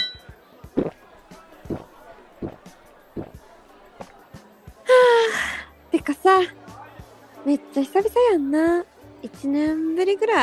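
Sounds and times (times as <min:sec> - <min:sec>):
drinking glasses clinking together in a toast: 0:00.0 - 0:00.3
murmur of restaurant chatter and voices: 0:00.0 - 0:10.4
speech: 0:07.4 - 0:10.4.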